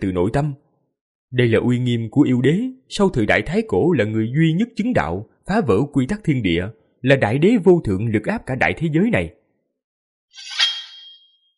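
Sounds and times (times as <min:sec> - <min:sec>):
speech: 0:00.0 - 0:00.6, 0:01.3 - 0:09.4, 0:10.3 - 0:10.6
dragon sword ringing as it flies out: 0:10.4 - 0:11.5.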